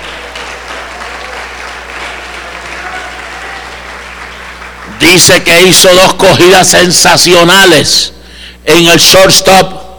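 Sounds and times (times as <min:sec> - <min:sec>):
audience applause: 0:00.0 - 0:05.0
speech: 0:05.0 - 0:09.8.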